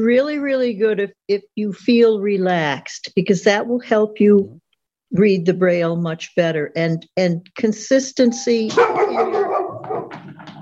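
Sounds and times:
speech: 0.0 - 9.6
dog barking and yipping: 8.3 - 10.2.

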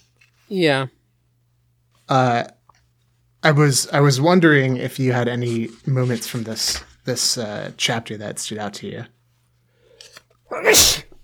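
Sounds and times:
speech: 0.5 - 1.0, 2.1 - 2.6, 3.4 - 9.2, 10.5 - 11.0
person sneezing: 10.5 - 11.2.

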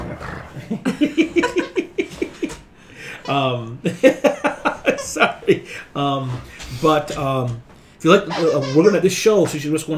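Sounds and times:
dog growling: 0.0 - 0.7
people chuckling: 0.4 - 6.0
speech: 0.7 - 1.8, 3.3 - 4.4, 5.2 - 9.9.

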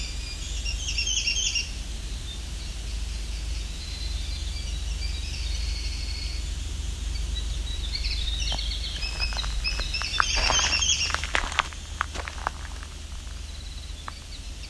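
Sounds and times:
winter wren song at a nature preserve by Lake Huron: 0.0 - 14.6
rustling and footstep-like crackles: 8.2 - 14.4.

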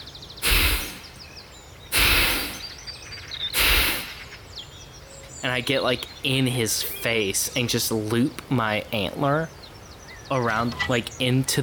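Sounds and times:
faint birdsong: 0.0 - 11.6
person imitating the heavy breathing of a deer: 0.4 - 1.2, 1.9 - 2.8, 3.6 - 4.3
speech: 5.4 - 9.6, 10.3 - 11.6.

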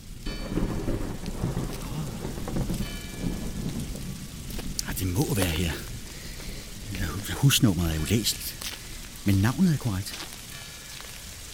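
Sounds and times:
deep distant thunderstorm rumbling: 0.0 - 9.6
steady rain in southern France: 0.0 - 11.5
speech: 5.0 - 5.9, 7.3 - 10.3.

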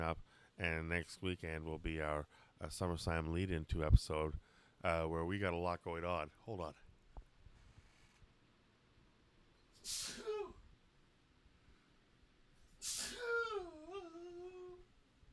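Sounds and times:
faint room noise: 0.0 - 15.3
speech: 0.1 - 6.8, 9.8 - 10.3
loud sneezes with short voiced tail: 9.8 - 10.6, 12.8 - 13.6.

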